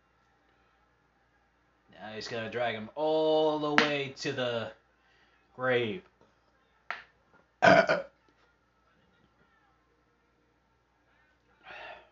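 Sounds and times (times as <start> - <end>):
speech: 2.0 - 4.8, 5.6 - 6.1, 7.7 - 8.1
loud burp: 7.6 - 8.1.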